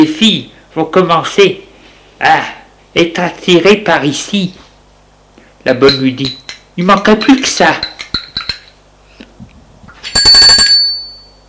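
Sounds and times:
speech: 0.0 - 4.6, 5.6 - 7.9
service bell ringing: 10.1 - 11.4.

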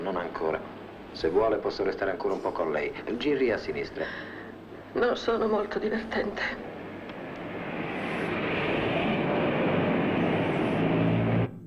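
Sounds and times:
speech: 0.1 - 6.7
car engine and road noise in a film scene: 6.7 - 11.6.

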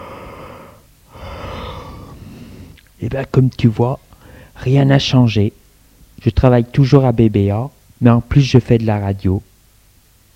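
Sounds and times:
person yawning while stretching: 0.0 - 2.8
speech: 3.0 - 4.0, 4.6 - 5.6, 6.2 - 9.5.

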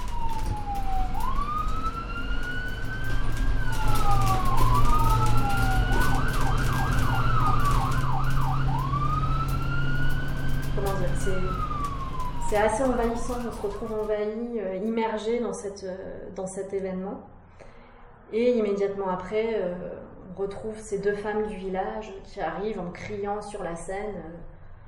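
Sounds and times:
ambulance sirens wailing and yelping: 0.0 - 14.2
low rumble of traffic: 0.0 - 24.8
speech: 12.5 - 17.4, 18.3 - 24.6.

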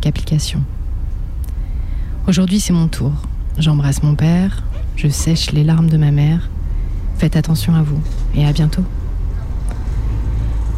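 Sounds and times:
bus driving along a road heard from inside: 0.0 - 10.7
speech: 0.1 - 0.8, 2.3 - 6.5, 7.2 - 9.0.

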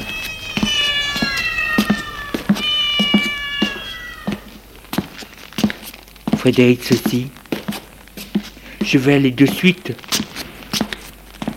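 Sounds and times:
cat meowing in long wailing cries: 0.0 - 5.4
speech: 6.4 - 7.4, 8.9 - 10.3.

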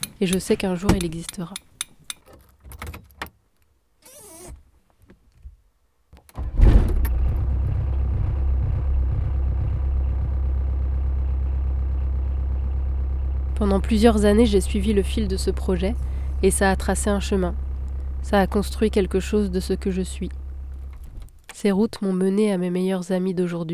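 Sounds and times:
car door clunk: 0.0 - 1.4, 6.2 - 10.4, 13.8 - 21.6
car engine turning over and idling: 0.0 - 1.8, 6.4 - 22.0
keys jingling: 0.0 - 2.5
speech: 0.2 - 1.7, 13.8 - 17.6, 18.2 - 20.4, 21.6 - 23.7.

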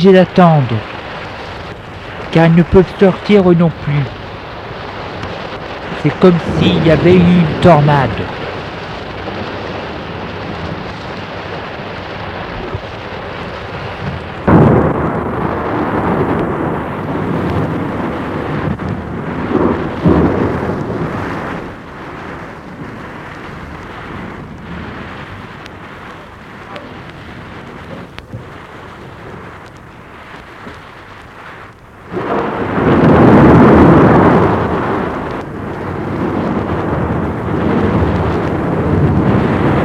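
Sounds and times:
speech: 0.0 - 1.0, 2.3 - 4.2, 6.0 - 8.5
loud thunder clap during a storm: 0.0 - 39.8
steady rain during a storm: 0.0 - 39.8
wind during a storm: 0.0 - 39.8.

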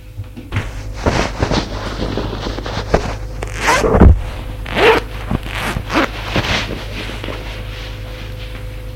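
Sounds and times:
clothes rustling as a man undresses: 0.6 - 6.9
zipper pulled open in quick rasping strokes: 2.7 - 6.5.

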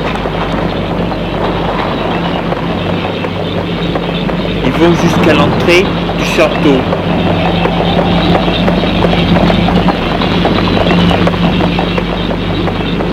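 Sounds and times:
horse hooves clip-clopping at a walk: 0.0 - 13.1
low rumble: 0.0 - 13.1
speech: 4.8 - 7.4, 9.3 - 9.6.

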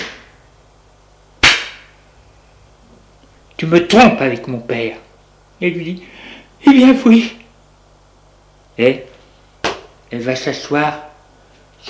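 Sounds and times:
slap across the face: 0.0 - 0.3, 1.4 - 2.0, 9.6 - 9.9
speech: 3.6 - 5.0, 5.6 - 7.4, 8.8 - 9.1, 10.1 - 11.1.

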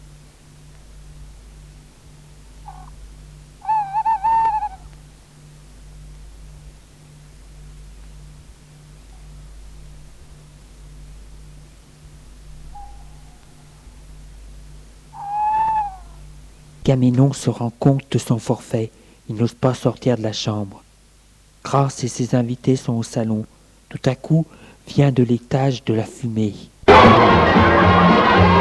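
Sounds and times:
steady low hum: 0.0 - 28.5
owl hooting at night: 2.5 - 5.7, 8.8 - 16.8
speech: 16.9 - 20.8, 21.6 - 28.5.

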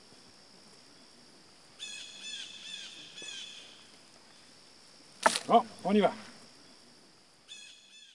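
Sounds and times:
steady insect hum: 0.0 - 8.1
blue jay calling: 1.8 - 3.9, 7.5 - 8.1
speech: 5.5 - 6.3.

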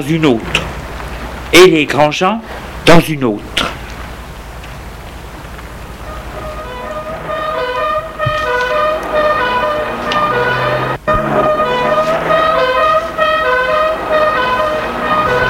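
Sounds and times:
speech: 0.0 - 0.8, 1.5 - 3.7
police car engines rumbling: 0.0 - 15.4
police car sirens: 5.1 - 15.4
police car horns blaring: 5.8 - 15.4.

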